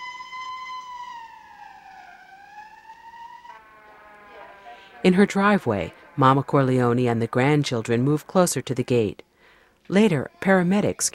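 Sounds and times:
siren of a white stretch ambulance passing a car on a flat country road: 0:00.0 - 0:08.4
speech: 0:05.0 - 0:09.3, 0:09.9 - 0:11.1.

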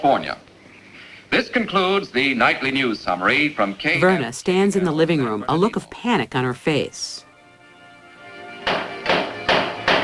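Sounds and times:
speech: 0:00.0 - 0:00.5, 0:01.3 - 0:07.2
low hum: 0:00.0 - 0:10.0
gun butt hammering against a wooden door: 0:08.6 - 0:10.0.

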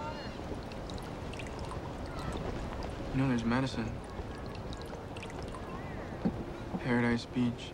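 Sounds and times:
faint hum: 0:00.0 - 0:07.7
tea pouring from a teapot into a cup: 0:00.1 - 0:06.2
speech: 0:03.1 - 0:04.1, 0:06.9 - 0:07.7.

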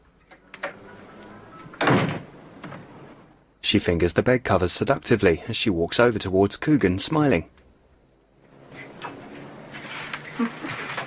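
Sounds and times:
door closing: 0:00.3 - 0:03.2, 0:08.6 - 0:11.0
speech: 0:03.7 - 0:07.6.

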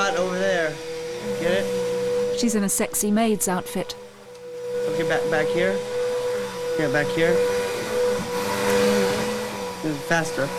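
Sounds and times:
vacuum cleaner running: 0:00.0 - 0:10.5
speech: 0:02.4 - 0:04.0, 0:05.0 - 0:05.9, 0:06.8 - 0:07.6, 0:09.8 - 0:10.5.

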